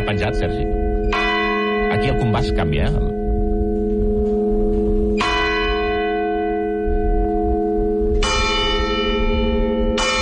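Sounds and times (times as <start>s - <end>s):
church bells tolling a slow death knell: 0.0s - 10.2s
speech: 0.1s - 1.2s, 1.9s - 3.2s.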